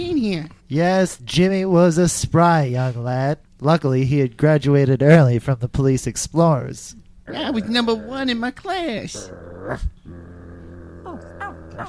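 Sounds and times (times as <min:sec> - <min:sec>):
speech: 0:00.0 - 0:10.2, 0:11.1 - 0:11.8
dogs growling: 0:07.3 - 0:08.4, 0:09.1 - 0:11.8.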